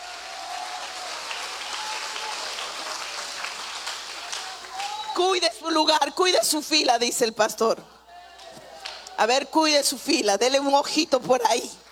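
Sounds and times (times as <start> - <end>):
audience clapping: 0.0 - 5.2, 8.8 - 9.1
speech: 5.2 - 8.0, 9.2 - 11.8.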